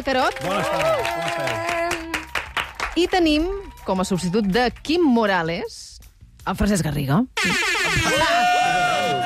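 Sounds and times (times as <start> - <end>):
speech: 0.0 - 1.8, 3.0 - 8.8
horn blowing steady tone: 7.4 - 9.1.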